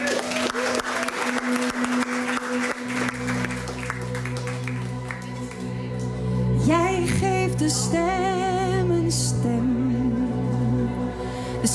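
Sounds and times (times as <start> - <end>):
studio audience applause on a radio arts programme: 0.0 - 6.2
sustained musical tones: 1.1 - 11.7
speech: 7.6 - 10.2.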